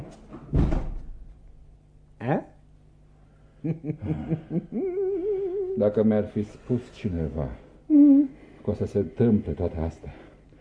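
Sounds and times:
door shut with one heavy thud: 0:00.3 - 0:01.3
speech: 0:03.6 - 0:05.0, 0:05.8 - 0:10.2.

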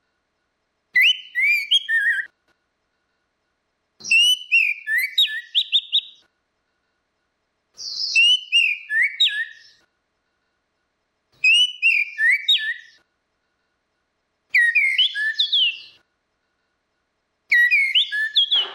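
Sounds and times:
orange-headed thrush whistled phrases: 0:01.0 - 0:02.3, 0:04.1 - 0:06.2, 0:07.8 - 0:09.8, 0:11.4 - 0:13.0, 0:14.5 - 0:16.0, 0:17.5 - 0:18.7.

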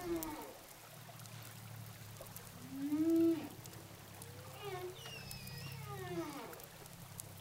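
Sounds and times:
humpback whale song recorded underwater with a hydrophone off Saint-Gilles, Réunion: 0:00.0 - 0:00.6, 0:02.6 - 0:03.6, 0:04.2 - 0:06.6.

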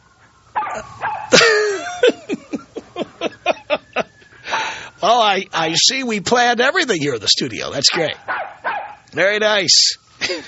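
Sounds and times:
dogs yapping and barking outside in a city neighborhood: 0:00.0 - 0:03.8, 0:07.8 - 0:09.1
speech: 0:00.8 - 0:01.0, 0:05.0 - 0:08.3, 0:09.2 - 0:10.4
laughter: 0:01.3 - 0:04.9, 0:10.2 - 0:10.4
dog whining yelp outside in a city neighborhood: 0:07.9 - 0:09.0.

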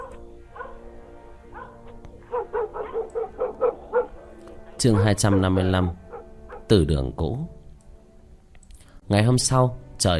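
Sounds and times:
dog barking and yipping in a village at night: 0:00.0 - 0:00.8, 0:01.5 - 0:06.7
speech: 0:04.8 - 0:06.0, 0:06.7 - 0:07.6, 0:09.1 - 0:10.1.

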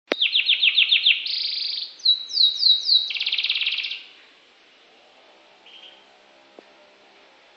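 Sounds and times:
Norwich canary singing: 0:00.1 - 0:04.2, 0:05.6 - 0:06.1.

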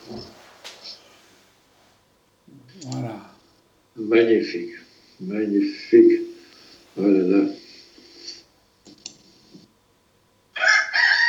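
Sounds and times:
quiet scratchy sounds: 0:00.0 - 0:09.8
speech: 0:04.1 - 0:06.2, 0:07.0 - 0:07.6
rooster crowing: 0:10.5 - 0:11.2.

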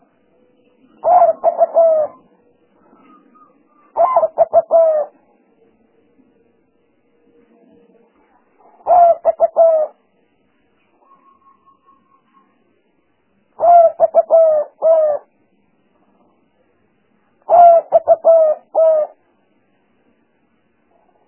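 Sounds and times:
faint steady tone: 0:00.0 - 0:21.2
spotted dove cooing as lure call: 0:00.8 - 0:05.3, 0:08.6 - 0:10.0, 0:13.6 - 0:15.3, 0:17.4 - 0:19.2.

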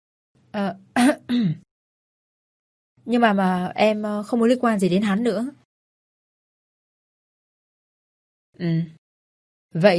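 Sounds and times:
speech: 0:00.5 - 0:01.6, 0:03.1 - 0:05.6, 0:08.6 - 0:09.0, 0:09.7 - 0:09.9
woman clearing her throat: 0:01.0 - 0:01.7
woman coughing: 0:01.0 - 0:01.7.

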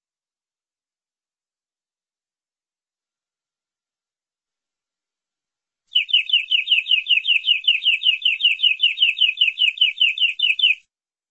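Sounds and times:
canary song: 0:05.9 - 0:10.9.

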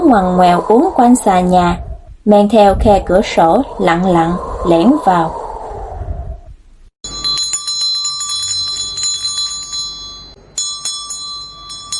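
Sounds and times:
speech: 0:00.1 - 0:05.4
bell hanging on a door ringing: 0:07.0 - 0:11.9.

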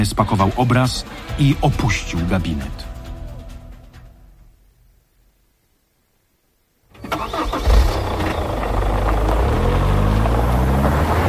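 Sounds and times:
speech: 0:00.0 - 0:02.9
off-road vehicle engine starting and idling: 0:06.9 - 0:11.2.

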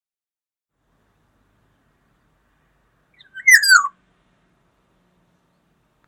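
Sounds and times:
black-naped oriole phrase with a note sliding down in pitch: 0:03.2 - 0:04.0.

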